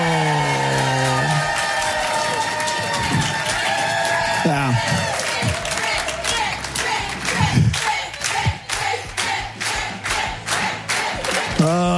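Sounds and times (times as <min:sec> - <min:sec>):
shouted voices: 0:00.0 - 0:08.6
crowd cheering and whooping for a quiz winner: 0:00.0 - 0:09.0
rapid clapping: 0:00.7 - 0:11.8.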